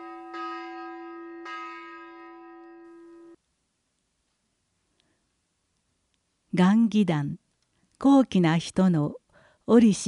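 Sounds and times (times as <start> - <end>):
peace bell struck, deep ringing tone: 0.0 - 3.4
speech: 6.6 - 7.4, 8.0 - 10.0.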